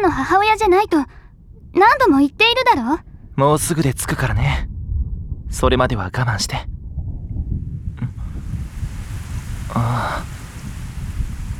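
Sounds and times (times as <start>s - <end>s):
low gusty rumbling: 0.0s - 11.5s
speech: 0.1s - 4.7s, 5.5s - 6.7s, 9.7s - 10.3s
rain beginning to fall: 7.9s - 11.5s.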